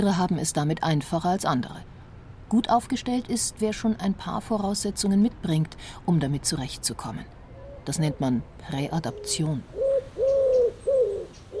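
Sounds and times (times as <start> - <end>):
speech: 0.0 - 9.8
faint hum: 0.0 - 11.5
city pigeon cooing: 9.1 - 11.5.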